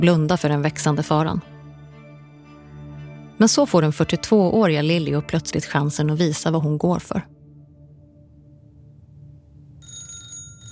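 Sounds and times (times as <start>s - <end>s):
speech: 0.0s - 1.6s, 3.4s - 7.4s
old telephone bell ringing at a woman's home in 1881: 9.8s - 10.7s.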